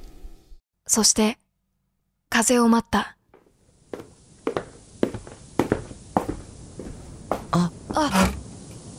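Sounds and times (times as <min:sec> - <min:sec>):
speech: 0:00.9 - 0:01.4, 0:02.4 - 0:03.2, 0:07.6 - 0:08.3
footsteps at an even walking pace: 0:03.3 - 0:08.4.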